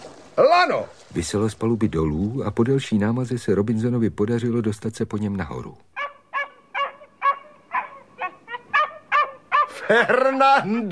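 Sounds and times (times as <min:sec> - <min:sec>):
speech: 0:00.6 - 0:05.9, 0:09.9 - 0:10.9
dog barking on a stranded shipwreck: 0:06.0 - 0:09.8
laughter: 0:09.5 - 0:10.9.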